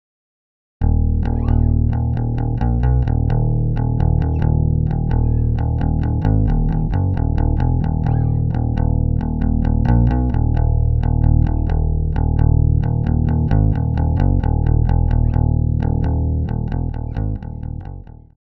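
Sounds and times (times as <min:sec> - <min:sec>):
unprocessed electric bass: 0:00.8 - 0:18.3.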